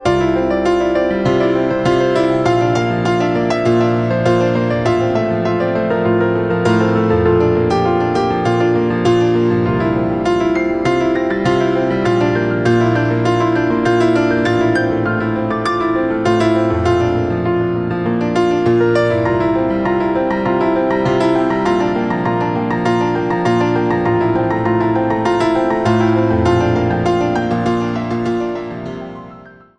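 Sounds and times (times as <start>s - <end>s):
piano instrumental love song: 0.0s - 29.7s.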